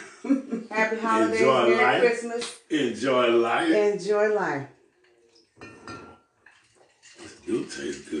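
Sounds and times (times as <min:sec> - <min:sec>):
laughter: 0:00.0 - 0:02.0, 0:02.8 - 0:03.6
speech: 0:00.2 - 0:04.7, 0:07.5 - 0:08.1
drinking glass of rum punch rattling: 0:05.6 - 0:06.2.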